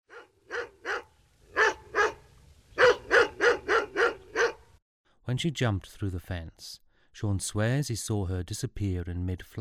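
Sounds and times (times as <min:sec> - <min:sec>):
dog barking in quick sharp bursts: 0:00.1 - 0:02.2, 0:02.8 - 0:04.7
speech: 0:05.3 - 0:09.5.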